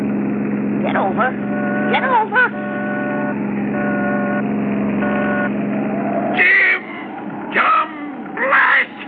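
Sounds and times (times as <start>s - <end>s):
speech: 0.8s - 2.6s
horn-like blasts: 1.2s - 5.6s, 6.3s - 8.1s
car with a California plate speeding past from behind: 1.6s - 8.5s.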